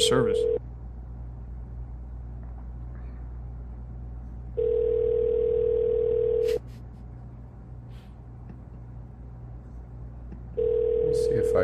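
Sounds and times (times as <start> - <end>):
low hum: 0.0 - 11.6
speech: 0.1 - 0.5
phone line ringing tone on an unanswered call to a business: 0.3 - 0.6, 4.6 - 6.5, 10.6 - 11.6.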